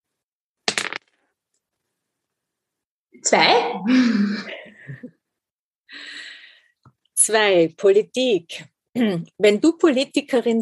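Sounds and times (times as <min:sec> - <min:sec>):
dice tumbling across a hard surface: 0:00.7 - 0:01.2
speech: 0:03.2 - 0:05.1, 0:07.2 - 0:10.6.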